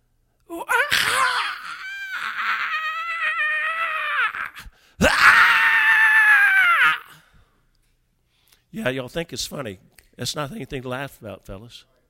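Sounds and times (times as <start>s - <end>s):
person screaming gutturally: 0.5s - 7.3s
speech: 8.8s - 12.0s.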